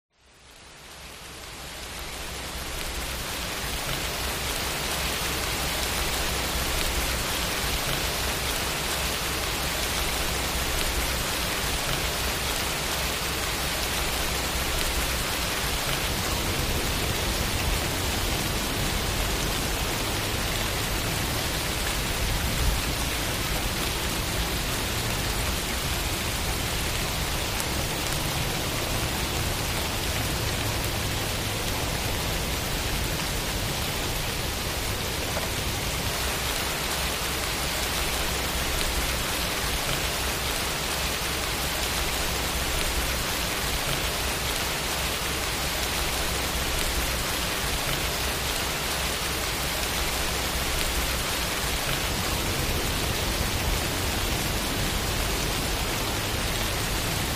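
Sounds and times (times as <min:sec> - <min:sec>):
rain: 0:00.1 - 0:57.3.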